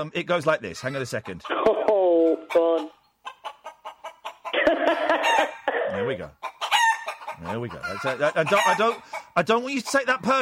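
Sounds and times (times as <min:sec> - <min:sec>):
speech: 0:00.0 - 0:03.0, 0:05.9 - 0:06.5, 0:07.4 - 0:10.3
chicken clucking and cackling: 0:00.7 - 0:05.7, 0:06.4 - 0:10.3
laughter: 0:04.5 - 0:06.1.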